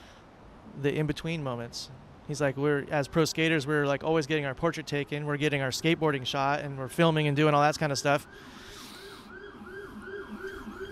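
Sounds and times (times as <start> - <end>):
speech: 0.8 - 8.6
siren passing outside: 7.9 - 10.9.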